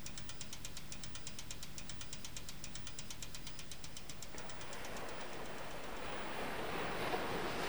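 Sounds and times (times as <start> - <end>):
bicycle rear wheel spinning with clicking rattle: 0.0 - 6.2
rushing surf: 4.3 - 7.6.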